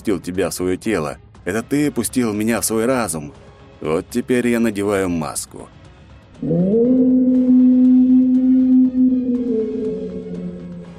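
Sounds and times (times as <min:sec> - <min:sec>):
speech: 0:00.0 - 0:05.8, 0:06.4 - 0:07.1
long loud mournful echoing howl: 0:06.4 - 0:10.9.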